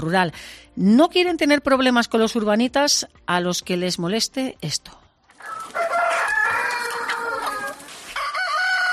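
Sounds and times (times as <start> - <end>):
speech: 0.0 - 5.9
rooster crowing: 5.4 - 8.9.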